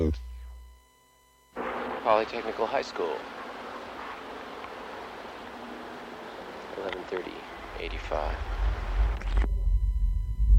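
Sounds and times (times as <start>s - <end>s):
speech: 0.0s - 0.3s, 2.0s - 3.4s, 6.8s - 8.5s
water flowing through a buried underground river: 1.6s - 9.5s
voices: 2.0s - 8.8s.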